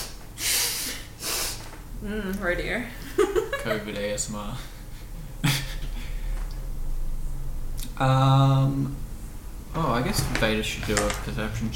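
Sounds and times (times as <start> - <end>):
airy nasal sniffles: 0.4 - 1.7
speech: 2.0 - 4.8, 8.0 - 9.1, 9.8 - 11.7
laughter: 3.0 - 4.0, 5.4 - 6.0.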